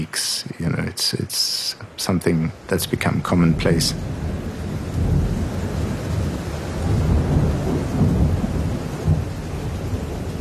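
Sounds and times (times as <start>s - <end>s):
speech: 0.0s - 4.2s
steady rain in Johannesburg summer thunderstorm: 0.0s - 10.3s
deep rolling thunder in Johannesburg summer thunderstorm: 3.4s - 10.3s.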